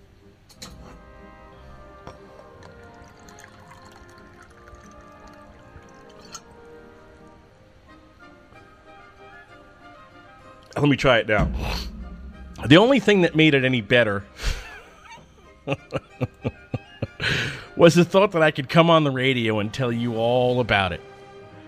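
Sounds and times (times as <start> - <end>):
water pouring and sloshing in a glass: 2.2 - 6.7
speech: 10.8 - 11.9, 12.6 - 14.4, 15.7 - 16.4, 17.8 - 21.0
laughter: 14.4 - 17.4.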